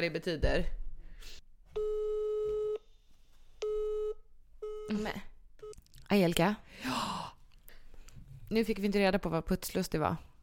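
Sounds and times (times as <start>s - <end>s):
speech: 0.0s - 1.4s, 4.9s - 5.3s, 6.1s - 7.2s, 8.5s - 10.3s
telephone busy signal during a phone call: 1.8s - 2.8s.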